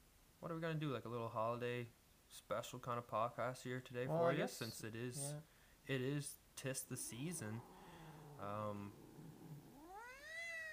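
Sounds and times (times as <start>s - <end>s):
speech: 0.4s - 7.8s, 8.4s - 9.0s
female pet cat meowing: 7.3s - 10.7s.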